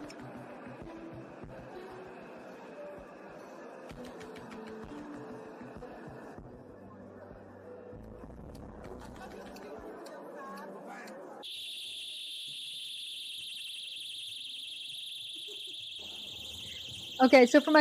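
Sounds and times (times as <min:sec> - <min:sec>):
crowd chatter in a banquet hall: 0:00.0 - 0:14.2
alarms on balloons launched at a meeting in a banquet hall: 0:11.4 - 0:17.7
speech: 0:17.2 - 0:17.7.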